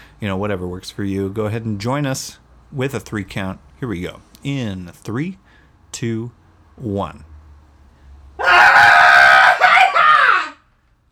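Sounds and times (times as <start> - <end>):
speech: 0.2 - 7.3
long cathartic human scream: 8.4 - 10.6.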